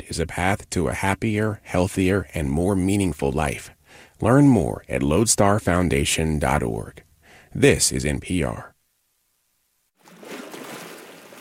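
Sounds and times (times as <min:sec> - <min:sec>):
speech: 0:00.1 - 0:08.7
waves lapping along the shoreline of Cortez Island in British Columbia: 0:10.0 - 0:11.3.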